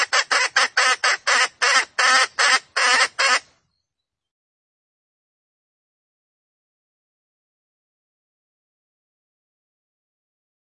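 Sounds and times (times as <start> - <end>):
female junglefowl cackling lure call: 0.0 - 3.5.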